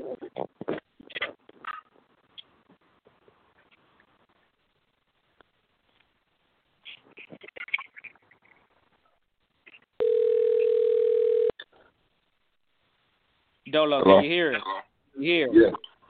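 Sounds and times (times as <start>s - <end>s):
speech: 0.1s - 0.5s, 13.7s - 15.8s
telephone dial tone while placing a call: 10.0s - 11.5s.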